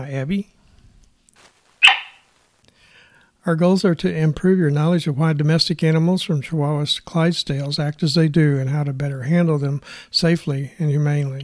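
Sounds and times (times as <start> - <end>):
speech: 0.0 - 0.6, 3.4 - 11.4
faint rustle: 0.6 - 2.8
cattle dog barking: 1.8 - 2.2.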